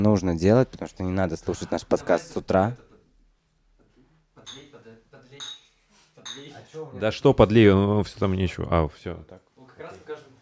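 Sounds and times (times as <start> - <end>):
speech: 0.0 - 2.9, 6.8 - 10.3
drinking glasses clinking in a toast: 4.4 - 4.8, 5.4 - 6.6.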